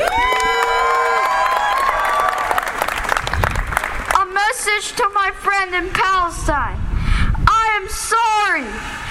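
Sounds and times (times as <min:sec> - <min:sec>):
high-pitched whoops and shouts from a crowd: 0:00.0 - 0:02.8
crowd clapping: 0:00.0 - 0:04.2
speech: 0:04.8 - 0:06.9, 0:07.8 - 0:09.0.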